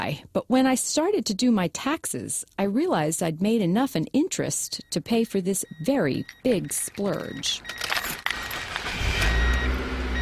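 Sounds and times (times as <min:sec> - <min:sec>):
speech: 0:00.0 - 0:07.9
used luxury car engine rumble: 0:06.2 - 0:10.2.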